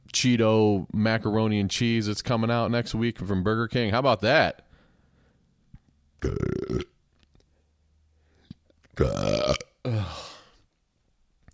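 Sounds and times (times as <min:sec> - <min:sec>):
speech: 0:00.2 - 0:04.6, 0:06.2 - 0:06.9, 0:09.0 - 0:09.3
person belching loudly: 0:06.2 - 0:07.0, 0:09.0 - 0:10.5.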